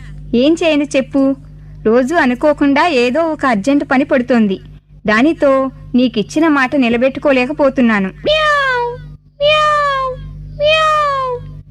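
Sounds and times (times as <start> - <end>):
speech: 0.3 - 8.4, 9.4 - 9.6
person imitating a cat meowing: 8.2 - 11.6.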